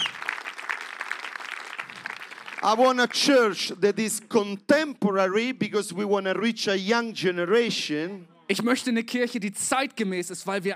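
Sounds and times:
church congregation clapping hands: 0.0 - 3.2
speech: 2.6 - 10.7.

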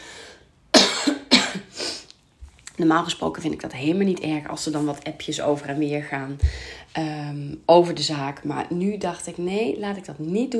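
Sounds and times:
person coughing: 0.7 - 1.8
speech: 2.8 - 10.5.

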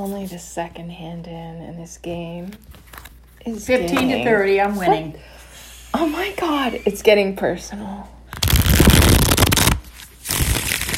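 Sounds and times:
speech: 0.0 - 2.8, 3.4 - 8.2
playing cards riffling and shuffling: 8.4 - 10.9.

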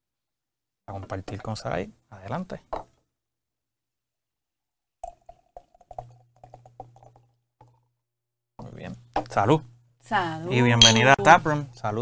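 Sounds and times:
speech: 0.9 - 2.8, 9.4 - 12.0
beer poured from a can in a studio in Guaynabo: 5.0 - 7.4.

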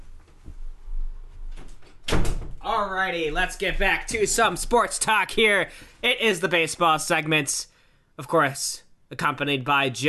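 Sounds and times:
door shutting with sharp loud thud and click: 1.6 - 2.6
speech: 2.7 - 10.0.

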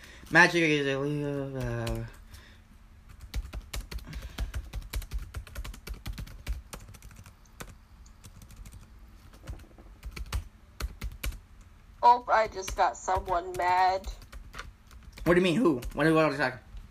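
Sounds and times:
speech: 0.3 - 2.2, 12.4 - 14.2, 15.2 - 16.6
typing on a computer keyboard: 1.4 - 2.4, 3.1 - 11.4, 12.6 - 16.1.

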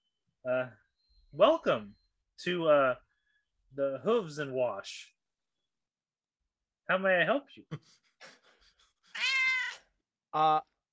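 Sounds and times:
speech: 0.4 - 3.0, 3.7 - 5.2, 6.9 - 8.4, 10.3 - 10.7
cat meowing: 9.1 - 9.8.

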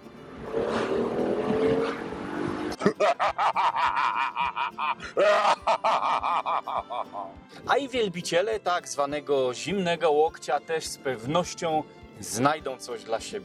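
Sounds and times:
car engine revving: 0.2 - 2.8
laughter: 2.8 - 7.3
speech: 3.4 - 13.4.

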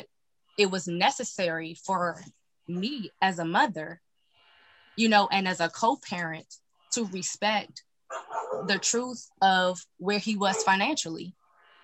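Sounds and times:
speech: 0.0 - 4.0, 5.0 - 11.4
pit bull dog barking: 8.1 - 8.8, 10.4 - 10.8.

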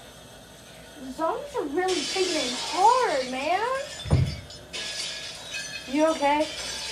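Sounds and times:
speech: 1.0 - 4.2, 5.9 - 6.7
glass shattering with a sharp crash: 1.9 - 6.9.

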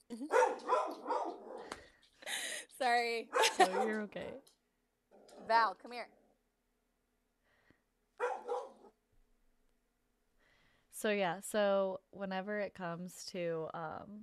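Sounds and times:
dog barking: 0.3 - 1.7, 3.3 - 4.1, 8.2 - 9.0
speech: 2.8 - 4.6, 5.5 - 6.2, 11.0 - 14.2.

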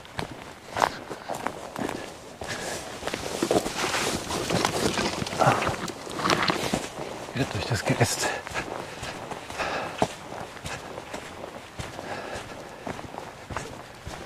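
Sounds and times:
footsteps of a person walking back: 0.0 - 14.2
speech: 7.4 - 8.6.

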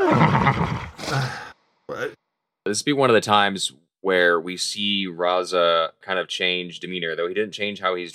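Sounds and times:
horse neighing: 0.0 - 1.0
speech: 2.0 - 8.1.

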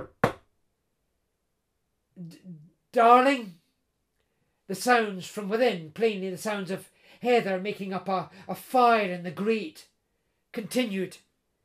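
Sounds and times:
knuckles rapping on a bedroom door: 0.0 - 0.4
speech: 2.2 - 3.6, 4.7 - 9.9, 10.5 - 11.3.

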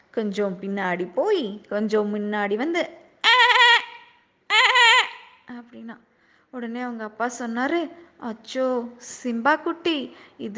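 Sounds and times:
speech: 0.2 - 3.0, 5.6 - 10.5
human voice imitating a donkey's bray: 3.2 - 5.4.

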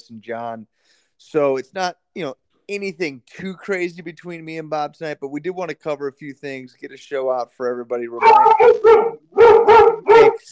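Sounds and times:
speech: 0.1 - 10.5
dog barking: 8.2 - 10.5.

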